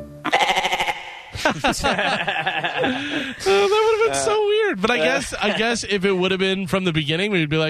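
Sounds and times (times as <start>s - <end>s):
goat bleating: 0.2s - 1.3s
laughter: 1.3s - 6.4s
speech: 1.6s - 7.6s.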